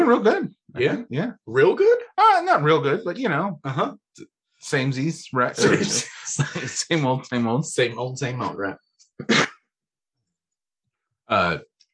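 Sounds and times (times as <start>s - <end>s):
speech: 0.1s - 9.5s, 11.3s - 11.7s
laughter: 5.4s - 8.7s
wet cough: 5.6s - 6.9s, 9.2s - 9.5s.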